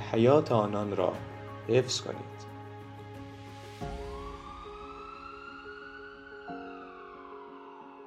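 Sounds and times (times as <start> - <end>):
speech: 0.1 - 2.4, 3.8 - 4.0
ambulance siren wailing: 3.8 - 8.0.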